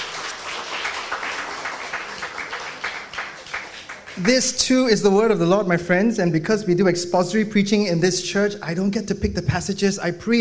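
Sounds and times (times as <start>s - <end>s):
audience applauding in a large room: 0.0s - 4.5s
speech: 4.2s - 10.3s.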